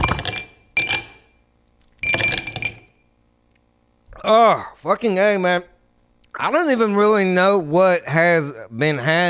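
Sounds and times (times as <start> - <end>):
glasses clinking together in a toast: 0.1 - 1.3, 2.0 - 3.0
speech: 4.3 - 5.7, 6.4 - 9.2.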